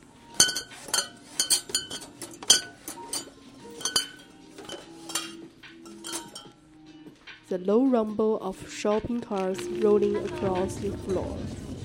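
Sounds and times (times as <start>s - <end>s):
glass bottles clinking against each other and a hard shelf: 0.3s - 6.6s
speech: 7.5s - 11.6s.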